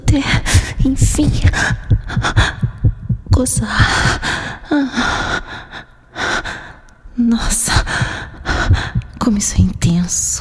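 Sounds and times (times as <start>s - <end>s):
speech: 0.1s - 2.6s, 3.4s - 5.6s, 7.3s - 8.2s, 9.3s - 10.3s
fast heartbeat sound effect: 0.4s - 4.4s, 7.7s - 9.9s.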